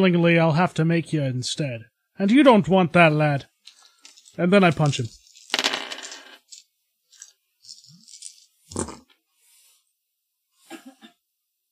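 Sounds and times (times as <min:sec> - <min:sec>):
speech: 0:00.0 - 0:03.5, 0:04.4 - 0:05.2
three dice clattering and rattling: 0:03.6 - 0:08.5.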